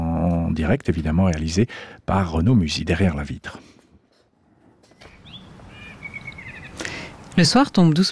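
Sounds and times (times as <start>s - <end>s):
speech: 0.6s - 3.7s, 7.4s - 8.1s
blackbird whistling fluting phrases: 5.0s - 7.0s.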